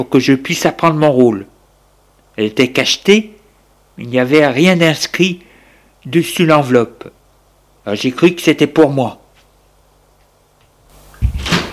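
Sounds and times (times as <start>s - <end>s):
speech: 0.0s - 1.5s, 2.4s - 3.4s, 4.0s - 7.2s, 7.8s - 9.2s
door opening: 11.2s - 11.7s.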